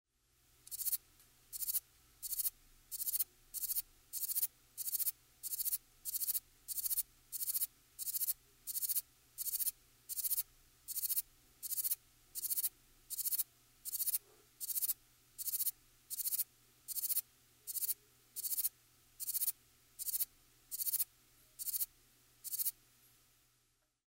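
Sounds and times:
grey bush cricket: 0.7 - 22.8.

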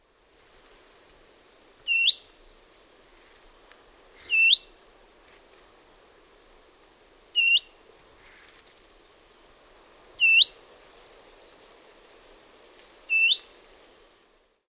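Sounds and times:
willow warbler singing: 7.4 - 7.7, 10.2 - 10.6, 13.1 - 13.4.

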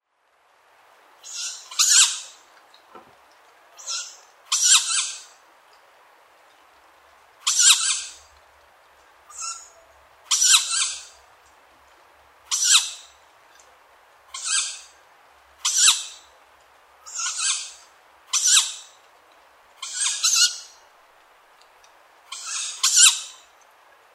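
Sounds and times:
tawny owl: 1.2 - 2.4, 3.8 - 5.4, 7.4 - 8.3, 9.3 - 11.2, 12.5 - 13.2, 14.3 - 15.0, 15.6 - 16.3, 17.0 - 19.0, 19.8 - 20.8, 22.3 - 23.5.

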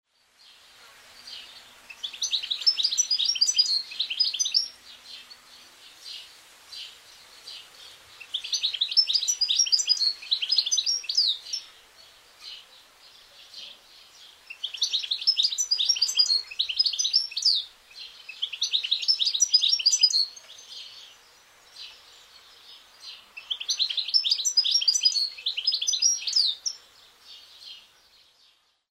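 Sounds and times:
goldfinch singing: 1.3 - 5.4, 7.5 - 12.6, 13.4 - 26.8.

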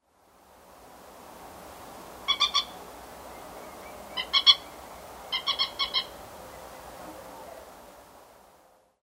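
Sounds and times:
moorhen at night: 2.3 - 7.7.

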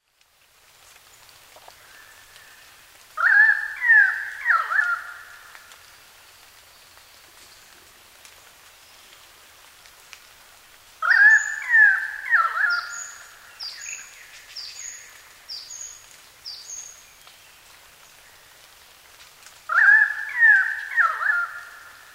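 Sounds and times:
pied currawong calling: 3.2 - 5.6, 11.0 - 15.8, 19.7 - 22.1.

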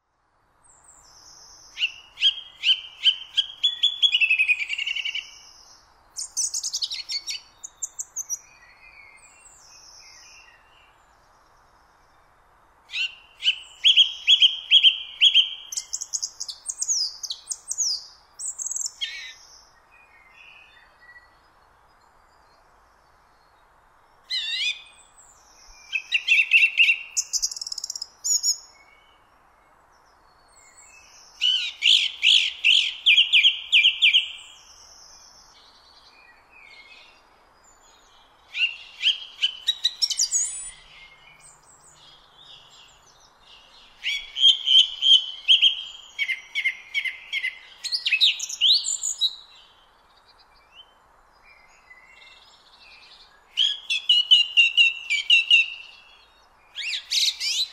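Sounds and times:
song thrush: 0.0 - 57.7.

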